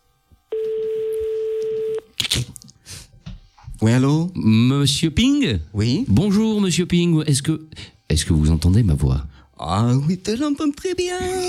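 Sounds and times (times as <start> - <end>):
telephone ringback tone on an outgoing call: 0.5 - 2.0
speech: 2.3 - 2.6, 3.8 - 11.4.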